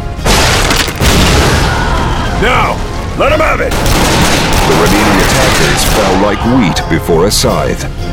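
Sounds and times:
loud explosion blasts: 0:00.2 - 0:02.9, 0:03.7 - 0:06.4
people shouting or crying: 0:01.5 - 0:02.8, 0:04.5 - 0:07.0
speech: 0:02.4 - 0:04.0, 0:04.7 - 0:08.0.

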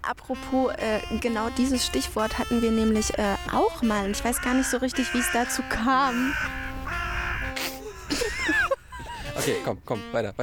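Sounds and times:
speech: 0:00.0 - 0:06.6, 0:09.4 - 0:10.4
crows cawing: 0:02.2 - 0:08.8
laughter: 0:07.5 - 0:09.8.

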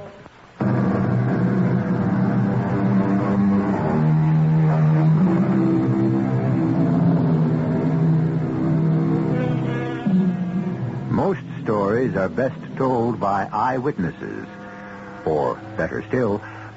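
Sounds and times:
Buick V6 car engine revving: 0:00.6 - 0:13.0
speech: 0:12.3 - 0:14.6, 0:15.2 - 0:16.7.

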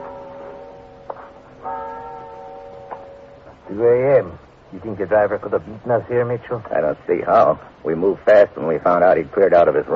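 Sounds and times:
large cathedral tower clock bell ringing on a square in Hamburg: 0:00.0 - 0:03.9
speech: 0:03.7 - 0:09.9.

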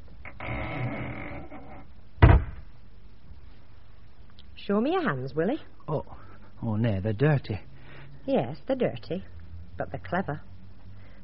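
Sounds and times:
heavy wooden cellar trap door creaking and scraping as it is closed: 0:00.2 - 0:02.4
heavy wooden cellar trap door dropping shut with a thud: 0:02.2 - 0:02.7
speech: 0:04.7 - 0:10.5.

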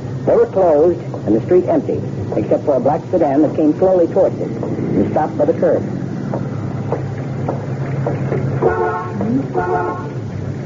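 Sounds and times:
low rumbling street noise: 0:00.0 - 0:10.6
wind: 0:00.0 - 0:10.6
speech: 0:00.2 - 0:06.0, 0:09.3 - 0:10.2
car horn honking: 0:08.6 - 0:10.2.

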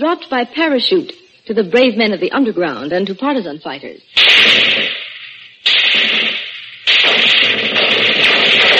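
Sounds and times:
speech: 0:00.0 - 0:04.6
Bren light machine gun firing, World War II weapon: 0:04.2 - 0:08.7.

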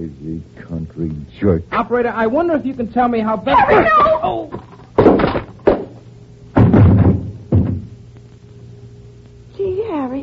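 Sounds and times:
speech: 0:00.0 - 0:04.7
paperweight striking a man's head with heavy blunt thuds: 0:05.0 - 0:08.0.

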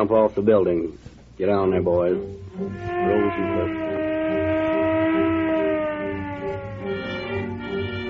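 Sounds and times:
speech: 0:00.0 - 0:04.0
police car siren wailing as the car speeds through downtown streets: 0:02.6 - 0:08.0.

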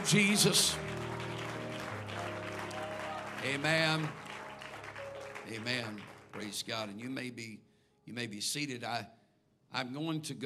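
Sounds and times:
speech: 0:00.0 - 0:01.0, 0:03.4 - 0:04.2, 0:05.5 - 0:10.4
audience clapping hands: 0:00.0 - 0:07.0
sustained organ or keyboard chords: 0:00.0 - 0:07.1.

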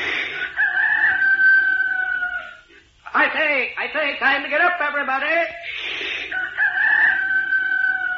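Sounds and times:
person imitating rooster crow: 0:00.4 - 0:02.7, 0:06.3 - 0:08.1
speech: 0:03.1 - 0:06.1.

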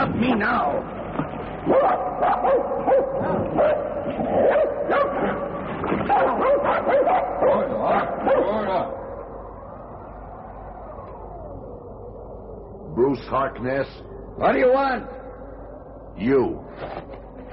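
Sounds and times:
speech: 0:00.3 - 0:01.0, 0:01.6 - 0:09.0, 0:13.0 - 0:15.2, 0:16.2 - 0:17.5
pack of sled dogs barking and yipping: 0:01.6 - 0:08.7.

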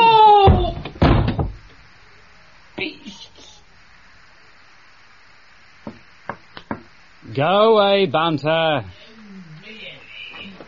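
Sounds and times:
person shouting: 0:00.0 - 0:00.8
door slammed shut during a schoolboy scuffle in a radio comedy: 0:00.4 - 0:01.6
speech: 0:07.4 - 0:09.0.

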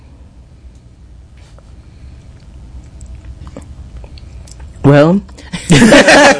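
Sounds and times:
small sip of spicy herbal tonic: 0:02.2 - 0:04.8
faint wet mouth clicks: 0:02.3 - 0:04.8
speech: 0:04.9 - 0:06.3
laughter: 0:05.6 - 0:06.3.

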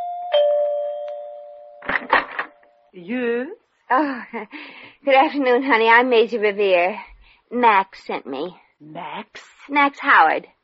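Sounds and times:
doorbell chime at the entrance of a large country house: 0:00.0 - 0:01.9
speech: 0:02.9 - 0:10.6.

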